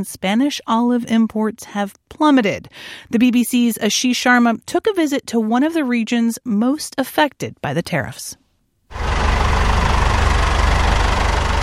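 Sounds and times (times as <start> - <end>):
speech: 0.0 - 9.1
diesel tractor engine idling at weighing bay: 8.9 - 11.6.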